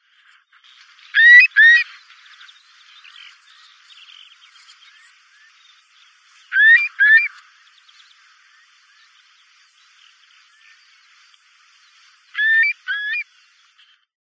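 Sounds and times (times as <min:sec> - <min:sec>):
Eurasian curlew: 0:00.8 - 0:03.8, 0:05.0 - 0:08.8, 0:12.3 - 0:14.0.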